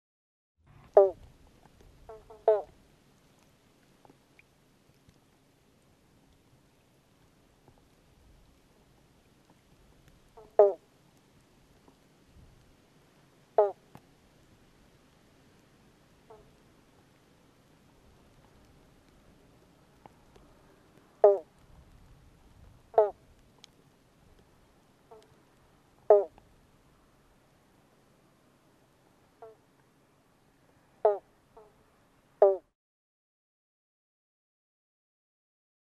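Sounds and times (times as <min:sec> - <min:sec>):
Western banjo frog calling: 0:00.8 - 0:01.2, 0:02.1 - 0:02.8, 0:10.4 - 0:10.8, 0:13.6 - 0:13.9, 0:16.2 - 0:16.6, 0:21.2 - 0:21.5, 0:22.9 - 0:23.2, 0:25.1 - 0:25.4, 0:26.0 - 0:26.4, 0:29.4 - 0:29.6, 0:31.0 - 0:31.8, 0:32.4 - 0:32.7.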